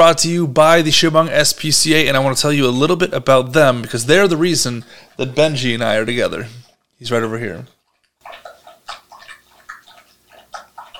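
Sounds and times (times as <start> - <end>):
speech: 0.0 - 7.8
dog lapping water from a bowl: 2.5 - 10.9.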